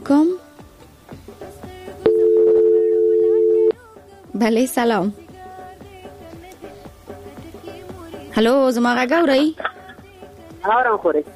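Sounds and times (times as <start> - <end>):
speech: 0.1 - 0.4, 4.4 - 5.2, 8.4 - 9.7, 10.6 - 11.3
telephone line tone as a call connects to a radio call-in line: 2.1 - 3.8.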